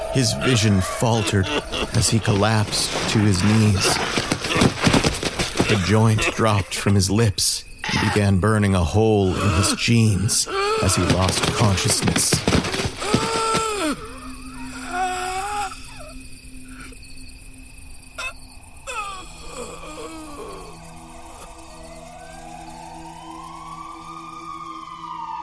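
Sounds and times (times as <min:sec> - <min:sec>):
ambulance siren wailing: 0:00.0 - 0:03.6, 0:21.5 - 0:25.4
insects chirping: 0:00.0 - 0:25.4
speech: 0:00.1 - 0:04.3, 0:05.7 - 0:12.9
laughter: 0:00.2 - 0:04.7.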